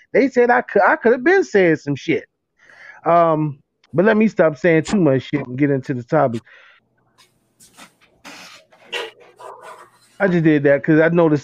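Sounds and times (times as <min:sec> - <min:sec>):
speech: 0:00.1 - 0:02.3, 0:03.0 - 0:06.7, 0:10.2 - 0:11.4
big dogs panting: 0:07.7 - 0:10.4
big dogs barking: 0:08.7 - 0:10.3.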